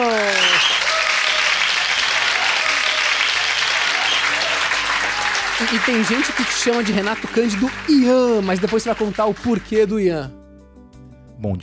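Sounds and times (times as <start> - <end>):
audience applause for a guest being introduced: 0.0 - 9.9
speech: 5.7 - 10.4, 11.4 - 11.6.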